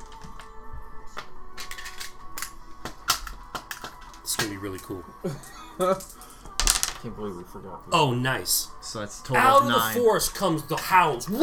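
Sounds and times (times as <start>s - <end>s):
speech: 4.4s - 6.3s, 7.0s - 11.4s
six-sided dice clattering across a tabletop: 6.6s - 7.0s.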